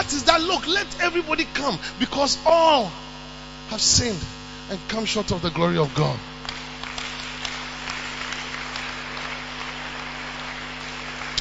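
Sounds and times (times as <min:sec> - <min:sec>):
faint low electrical hum: 0:00.0 - 0:11.4
speech: 0:00.1 - 0:03.1, 0:03.7 - 0:06.3
crowd clapping: 0:06.4 - 0:11.4.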